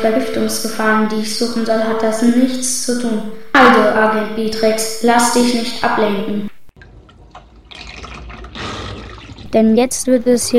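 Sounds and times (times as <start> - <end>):
speech: 0.0 - 6.5, 9.5 - 10.5
water running from a tap into a bucket: 6.8 - 10.5.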